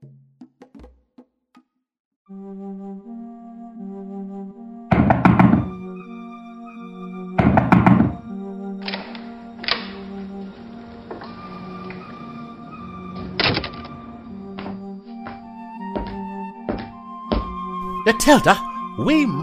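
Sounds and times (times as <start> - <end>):
speech: 2.3 - 3.1, 18.2 - 19.4
loud heavy knocking on an office door: 4.9 - 5.8, 7.4 - 8.3, 16.0 - 17.6.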